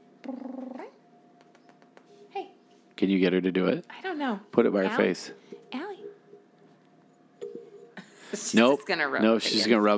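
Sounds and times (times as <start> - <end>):
female pet cat purring: 0.2 - 2.1
speech: 3.0 - 5.4, 8.5 - 9.9.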